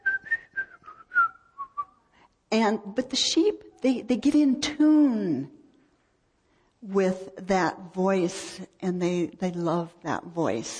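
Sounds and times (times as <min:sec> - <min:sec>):
person whistling a short bright tune: 0:00.0 - 0:02.0
speech: 0:02.5 - 0:05.6, 0:06.8 - 0:10.7.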